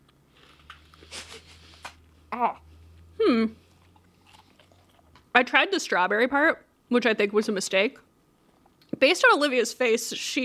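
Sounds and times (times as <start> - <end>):
faint steady low hum: 0.0 - 10.4
speech: 2.4 - 3.6, 5.4 - 8.1, 9.0 - 10.4
crunching of freeze-dried ice cream being bitten: 3.7 - 5.3.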